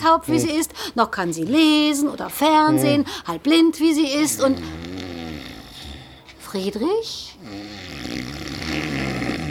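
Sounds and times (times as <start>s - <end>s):
speech: 0.0s - 4.9s, 6.5s - 7.8s
man snoring: 4.2s - 6.2s, 7.4s - 9.4s.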